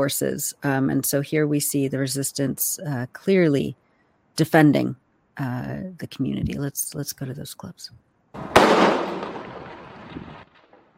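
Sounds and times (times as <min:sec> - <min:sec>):
speech: 0:00.0 - 0:03.8, 0:04.4 - 0:08.1
modified .50 calibre sniper rifle shot during fighting in Khan Yunis: 0:08.4 - 0:10.4.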